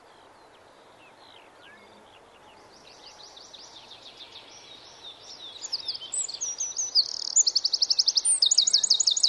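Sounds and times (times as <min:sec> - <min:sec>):
faint background hiss: 0:00.0 - 0:09.2
Eurasian wren singing: 0:01.3 - 0:09.2.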